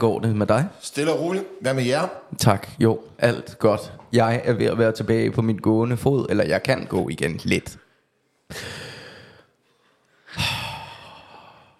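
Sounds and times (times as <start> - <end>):
speech: 0.0 - 7.8, 8.5 - 8.8
heavy breaths blown into a microphone: 7.8 - 11.7.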